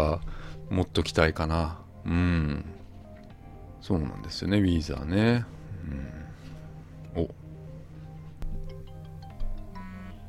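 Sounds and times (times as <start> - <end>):
speech: 0.0 - 2.7, 3.8 - 6.2, 7.1 - 7.4
phone ringing with a melodic electronic ringtone: 8.7 - 10.2.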